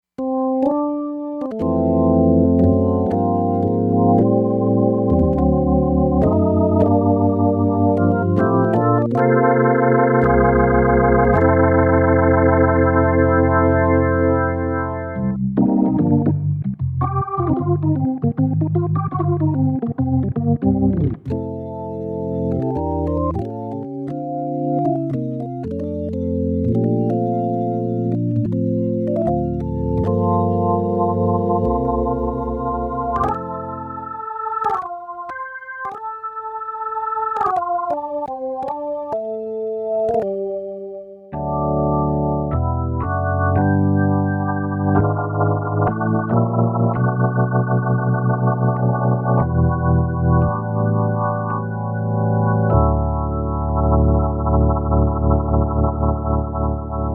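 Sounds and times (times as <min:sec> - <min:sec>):
ballad organ music: 0:00.2 - 0:57.1.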